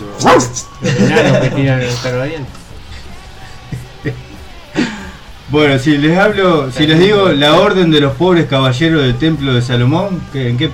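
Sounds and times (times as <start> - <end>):
dog whining yelps: 0.0 - 0.8
dog barking: 0.1 - 0.8
laughter: 0.2 - 2.1, 2.9 - 5.2
speech: 0.2 - 2.6, 4.0 - 4.2, 5.5 - 10.7.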